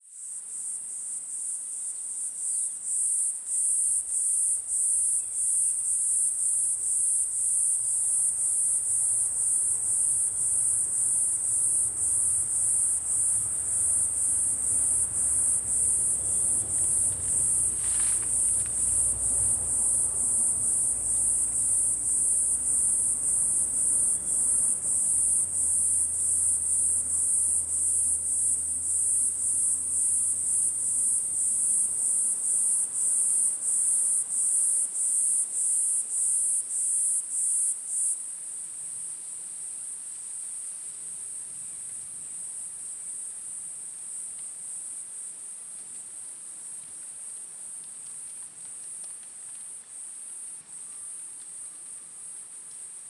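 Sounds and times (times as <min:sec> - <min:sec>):
high-pitched cricket chirping: 0:00.1 - 0:45.6
car passing slowly in the background: 0:07.8 - 0:33.7.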